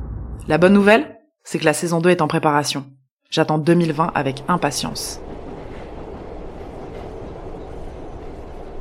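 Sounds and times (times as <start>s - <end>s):
speech: 0.5s - 5.2s
metro train rumbling on rails: 3.8s - 8.7s.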